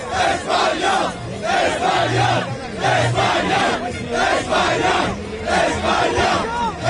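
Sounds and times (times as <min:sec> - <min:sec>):
Spain football fans chanting in the streets of New Jersey: 0:00.0 - 0:06.8.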